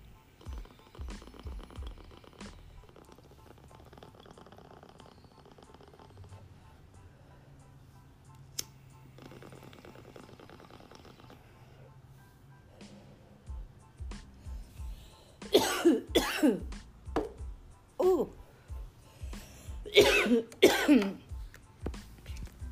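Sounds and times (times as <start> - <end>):
person coughing after smoking strawberry shortcake: 15.5 - 16.7, 19.8 - 21.3.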